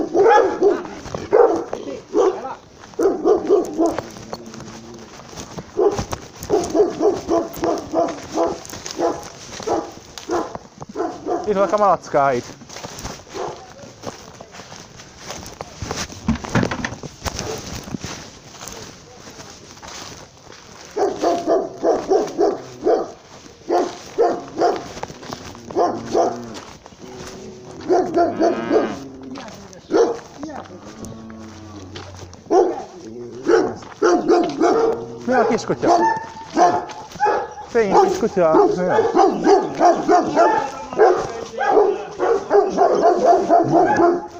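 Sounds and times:
small dog barking: 0.0 - 4.2, 5.8 - 11.7, 13.3 - 13.7, 20.9 - 29.0, 29.8 - 30.5, 32.4 - 44.3
speech: 11.6 - 12.6, 35.7 - 35.9, 38.4 - 40.7.

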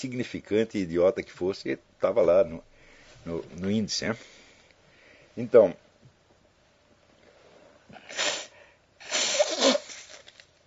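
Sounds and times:
speech: 0.0 - 4.4, 5.4 - 5.8
man in poor health sneezing: 8.0 - 10.2.

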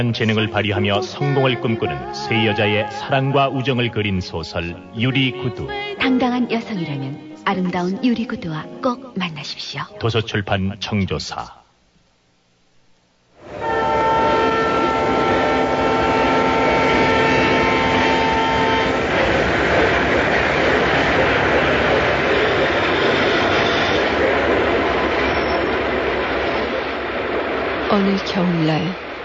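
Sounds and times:
train roaring and rattling at a rural railway station: 0.0 - 7.9, 13.4 - 29.2
speech: 0.0 - 11.6, 28.0 - 29.0
train horn blast at a rural railway station on a winter day: 13.4 - 24.1.

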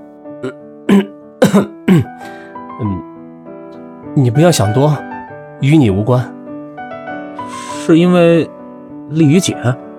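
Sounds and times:
person clearing throat and coughing softly: 0.4 - 2.2
speech: 0.4 - 3.0, 4.2 - 6.4, 7.9 - 9.8.

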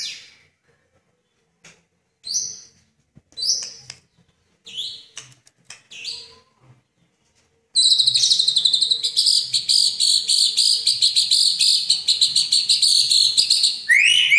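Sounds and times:
Oriental magpie-robin chirping song: 2.2 - 2.8, 4.6 - 5.2, 5.9 - 6.4, 7.8 - 14.3.

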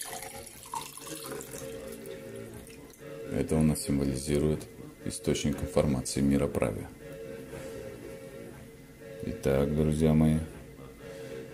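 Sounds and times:
liquid poured in a steady stream during a small ritual: 0.0 - 3.0
speech: 3.4 - 7.0, 9.2 - 10.5.

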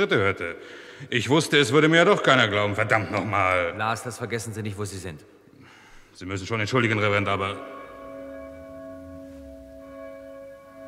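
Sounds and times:
speech: 0.0 - 5.4, 6.2 - 7.8
church bells ringing: 6.8 - 10.8.

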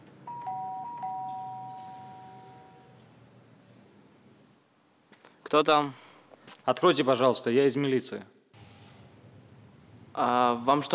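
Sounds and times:
two-note electronic doorbell chime rung by police at a home door: 0.3 - 3.0
speech: 5.5 - 6.0, 6.6 - 8.4, 10.2 - 10.9.

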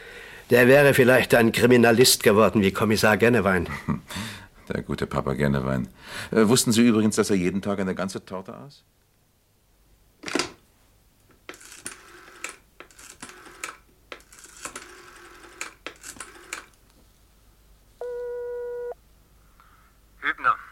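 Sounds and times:
speech: 0.5 - 9.0
telephone ringing for a late incoming call: 11.5 - 16.7, 18.0 - 19.0.

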